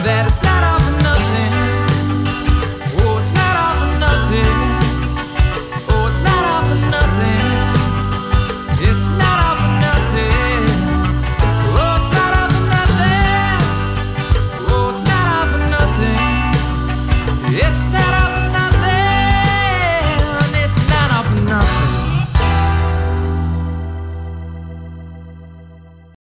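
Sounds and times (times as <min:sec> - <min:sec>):
clavinet: 0:00.0 - 0:25.7.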